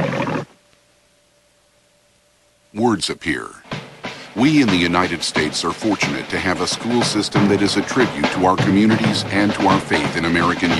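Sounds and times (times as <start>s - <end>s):
thick-maned lion roaring in a film studio logo: 0.0s - 0.5s
speech: 2.8s - 3.7s, 4.4s - 10.7s.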